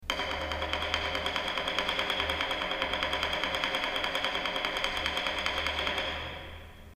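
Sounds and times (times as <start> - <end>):
taiko drum rimshots: 0.0 - 6.3.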